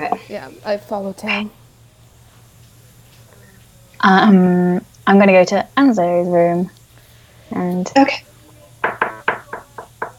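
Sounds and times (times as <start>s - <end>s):
speech: 0.0s - 1.6s, 4.0s - 6.8s, 7.5s - 9.0s
quiet hum: 0.0s - 10.1s
knocking on a door: 8.8s - 10.1s.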